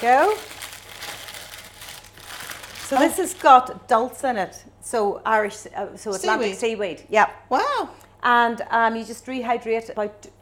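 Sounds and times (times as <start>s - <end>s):
speech: 0.0s - 0.6s, 2.9s - 10.3s
brown paper package being unwrapped: 0.0s - 3.6s.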